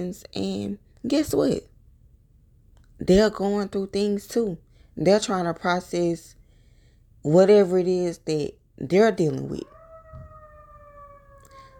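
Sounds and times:
speech: 0:00.0 - 0:01.7, 0:03.0 - 0:06.4, 0:07.2 - 0:09.7
ambulance siren wailing outside: 0:09.5 - 0:11.7.

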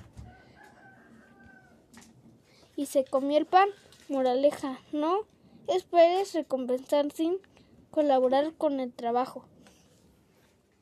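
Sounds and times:
hen clucking and squawking in drawn-out warbling calls: 0:00.0 - 0:01.9
speech: 0:02.8 - 0:09.5.

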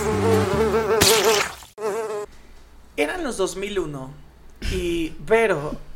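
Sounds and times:
housefly buzzing while circling: 0:00.0 - 0:02.3
speech: 0:03.0 - 0:05.9.

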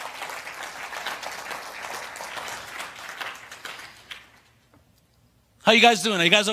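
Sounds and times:
audience applauding loudly: 0:00.0 - 0:04.6
speech: 0:05.6 - 0:06.5.

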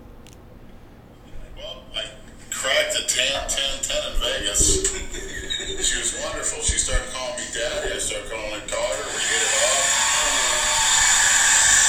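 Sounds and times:
laughter: 0:01.6 - 0:11.0
hair dryer running: 0:08.7 - 0:11.8.

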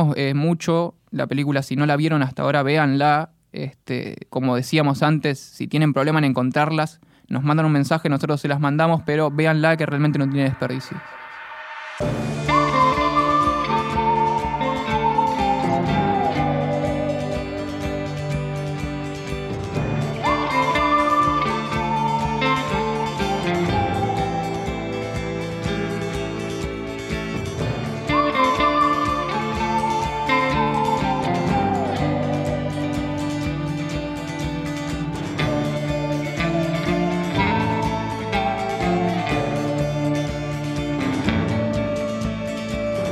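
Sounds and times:
speech: 0:00.0 - 0:11.2, 0:12.0 - 0:12.5
full steady musical backing: 0:07.8 - 0:43.0
whistled melody announcing the segment: 0:09.3 - 0:43.0.

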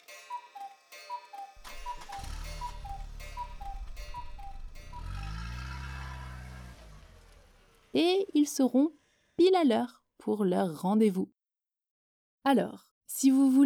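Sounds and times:
clock ticking: 0:00.0 - 0:06.2
low rumbling: 0:01.6 - 0:08.0
speech: 0:07.9 - 0:11.4, 0:12.4 - 0:13.6.

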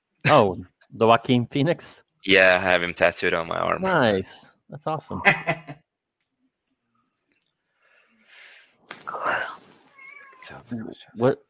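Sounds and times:
speech: 0:00.2 - 0:05.7, 0:08.9 - 0:09.3, 0:10.5 - 0:11.4
cat meowing: 0:09.8 - 0:10.7.

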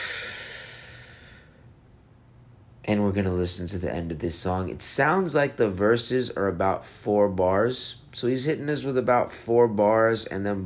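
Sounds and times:
long airy deep breath: 0:00.0 - 0:01.7
speech: 0:02.8 - 0:10.6.

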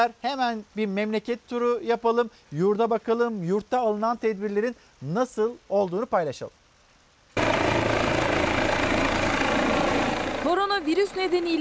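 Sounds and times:
speech: 0:00.0 - 0:06.6, 0:10.5 - 0:11.5
rising tonal whine: 0:07.4 - 0:10.4
ambulance helicopter engine and rotor roar: 0:07.4 - 0:11.5.

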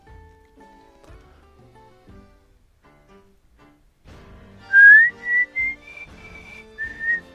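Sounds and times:
man whistling a tune: 0:04.7 - 0:07.3.

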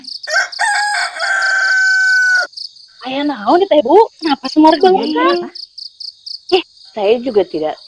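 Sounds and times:
rooster crowing: 0:00.1 - 0:02.6
speech: 0:03.1 - 0:05.6, 0:06.5 - 0:07.8.

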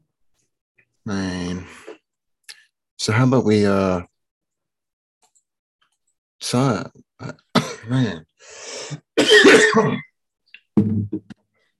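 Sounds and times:
speech: 0:01.0 - 0:01.9, 0:03.1 - 0:04.1, 0:06.4 - 0:10.1, 0:10.8 - 0:11.4
person clearing throat gravelly: 0:07.2 - 0:08.1, 0:09.2 - 0:10.1
person coughing with a loud rasping cough: 0:07.5 - 0:08.1, 0:09.2 - 0:10.1.

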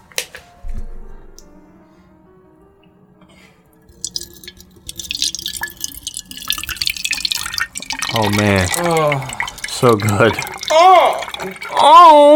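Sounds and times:
water poured into a can: 0:03.8 - 0:12.2
speech: 0:08.2 - 0:12.3.

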